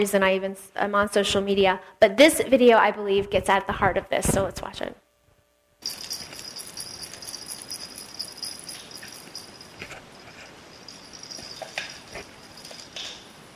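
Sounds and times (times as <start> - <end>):
speech: 0.0 - 5.0
dog grabbing and tugging at a toy: 5.8 - 13.4.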